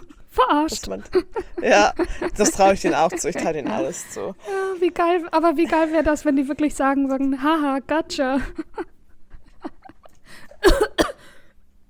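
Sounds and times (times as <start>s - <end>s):
speech: 0.4s - 8.9s, 10.6s - 10.9s
laughter: 1.0s - 4.5s
sharp harsh coughs: 10.6s - 11.8s.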